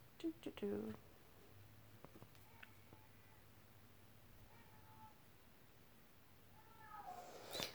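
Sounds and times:
speech: 0.2 - 1.1
cat meowing: 4.5 - 5.2, 6.6 - 7.6.

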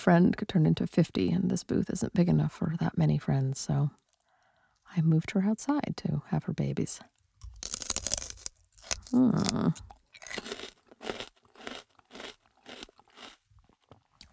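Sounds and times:
speech: 0.0 - 4.0, 4.9 - 7.8, 9.1 - 10.5
celery being bitten and chewed: 7.4 - 14.3.

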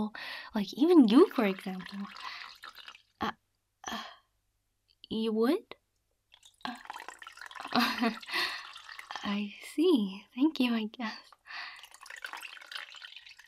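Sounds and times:
speech: 0.0 - 2.4, 3.2 - 4.1, 5.1 - 5.8, 8.0 - 8.4, 9.2 - 11.3
water trickling and dripping poured over a body in bath water: 0.7 - 3.3, 6.3 - 9.4, 11.3 - 13.4.

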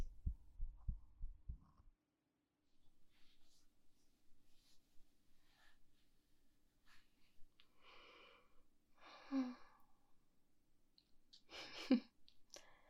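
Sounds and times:
fast human heartbeat: 0.0 - 1.8.

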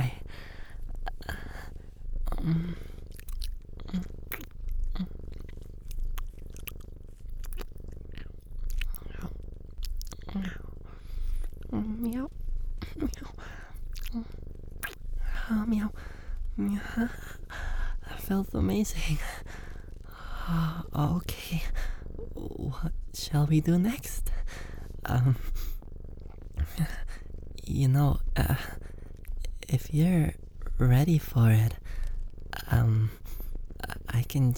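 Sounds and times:
soft whispery breaths: 0.0 - 3.1, 10.5 - 11.6, 12.8 - 14.4, 15.2 - 22.7, 23.8 - 25.9, 26.5 - 27.4, 31.5 - 34.1
person imitating a cat's purr: 0.0 - 34.5
speech: 2.4 - 2.9, 16.9 - 17.2, 18.3 - 19.5, 20.5 - 21.9, 22.8 - 24.2, 25.1 - 25.5, 27.8 - 28.8, 29.9 - 31.8, 32.7 - 33.2, 34.3 - 34.5.

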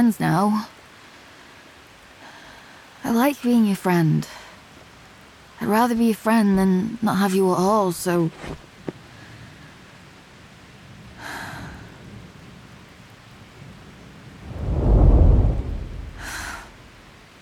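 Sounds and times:
speech: 0.0 - 0.8, 3.0 - 4.4, 5.6 - 8.7
steady rain: 0.0 - 17.4
deep roll of thunder rumbling: 14.4 - 17.2.

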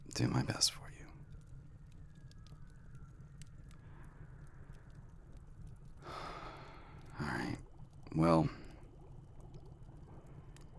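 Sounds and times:
speech: 0.2 - 1.0, 8.2 - 8.6
water at a steady boil: 2.7 - 10.7.

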